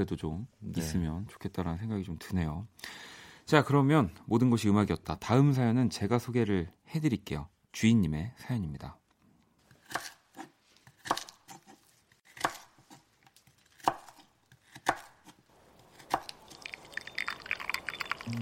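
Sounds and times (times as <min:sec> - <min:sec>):
speech: 0:00.0 - 0:09.0
crackling kitchen sounds: 0:09.2 - 0:18.3
knife chopping meat and vegetables on a board in a home kitchen: 0:09.8 - 0:13.0, 0:13.8 - 0:15.4.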